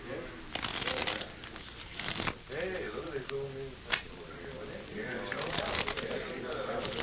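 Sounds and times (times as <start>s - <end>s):
faint voices murmuring: 0.0s - 7.0s
deck of playing cards riffle shuffled at a card game table: 0.5s - 2.4s, 5.3s - 7.0s.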